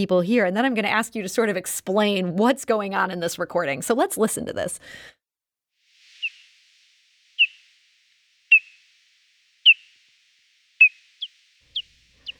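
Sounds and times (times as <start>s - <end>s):
speech: 0.0s - 5.2s
hoary bat echolocation calls recorded with a bat detector: 5.9s - 12.3s.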